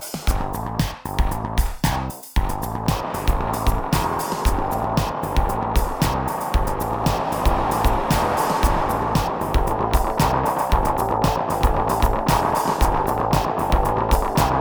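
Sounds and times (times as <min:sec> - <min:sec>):
cheap radio sound from a reverb unit preset: 0:00.1 - 0:14.5.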